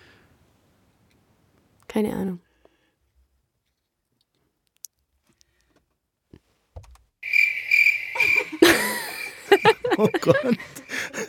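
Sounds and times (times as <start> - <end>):
speech: 2.0 - 2.4, 10.0 - 10.6
cricket trill at a high pitch: 7.2 - 11.2
laughter: 8.2 - 11.2.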